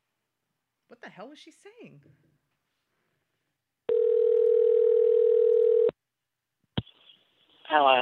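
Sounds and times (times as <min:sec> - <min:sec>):
speech: 0:00.9 - 0:02.4, 0:07.7 - 0:07.9
telephone ringback tone while calling someone back: 0:03.9 - 0:05.9.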